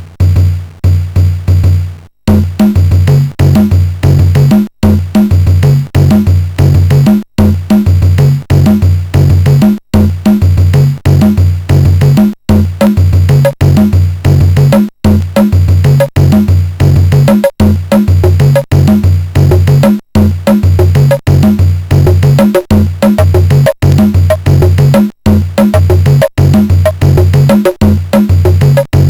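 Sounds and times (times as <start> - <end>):
rock tune on a MOS6581 SID chip: 0.2 - 29.0.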